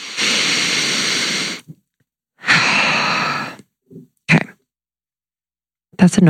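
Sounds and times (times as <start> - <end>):
deep breath in and out: 0.0 - 1.7, 2.4 - 3.7
speech: 6.0 - 6.2.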